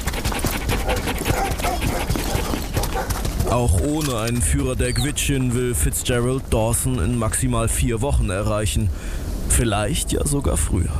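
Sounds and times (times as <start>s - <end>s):
sled dogs panting rapidly: 0.0s - 3.7s
clatter of sled team setting off: 0.0s - 4.5s
sled dogs whimpering: 0.4s - 3.6s
speech: 3.6s - 10.9s.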